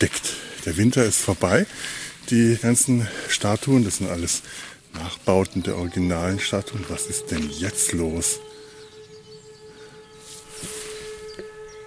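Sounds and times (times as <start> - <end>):
speech: 0.0 - 8.5
hissy outdoor noise: 0.0 - 11.8
siren droning: 5.4 - 11.8.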